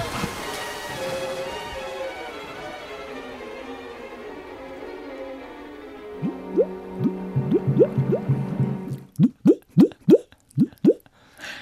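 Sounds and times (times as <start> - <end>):
low bubbling water gurgle: 6.2 - 11.0
live foley water drips and plops: 6.2 - 11.1.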